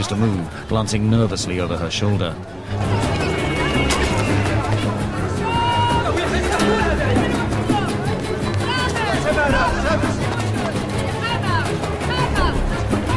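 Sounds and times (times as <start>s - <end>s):
speech: 0.0s - 3.2s
many overlapping voices chattering and calling in a market: 0.0s - 13.1s
footsteps of shoppers in a market: 2.7s - 13.1s.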